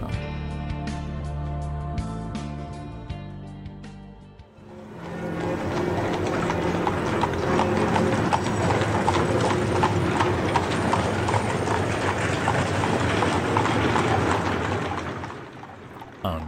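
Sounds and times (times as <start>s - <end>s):
music: 0.0s - 8.8s
many horses' hooves clip-clopping on a hard street as soldiers pass: 4.7s - 16.4s.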